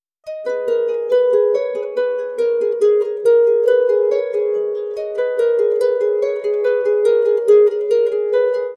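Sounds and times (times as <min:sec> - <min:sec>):
harp: 0:00.2 - 0:08.7.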